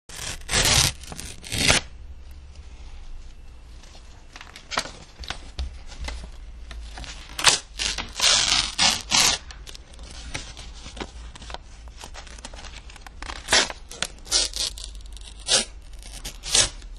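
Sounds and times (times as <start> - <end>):
sheet tearing: 0.1 - 1.9, 7.2 - 9.6, 13.2 - 16.9.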